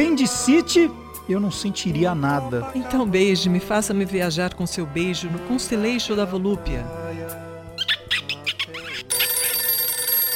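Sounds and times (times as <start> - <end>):
speech: 0.0 - 7.3
telephone bell ringing: 9.1 - 10.3.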